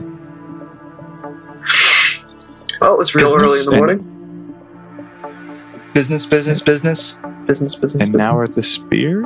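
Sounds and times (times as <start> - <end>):
bird screaming: 1.6 - 2.4
speech: 2.8 - 4.1, 6.0 - 9.2.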